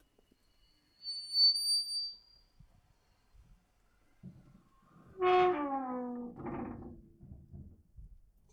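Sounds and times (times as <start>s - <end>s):
submarine door: 5.2s - 7.2s.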